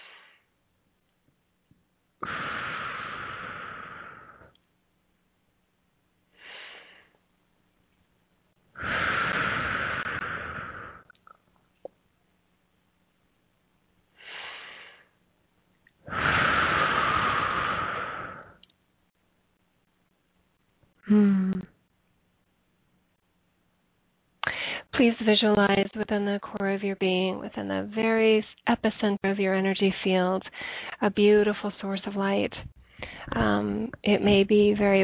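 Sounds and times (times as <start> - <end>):
deep breathing in through the nose and out through the mouth: 2.2 - 4.6, 8.7 - 11.2, 16.0 - 18.6, 24.4 - 24.9, 30.4 - 31.0, 32.6 - 33.4
speech: 25.0 - 35.0.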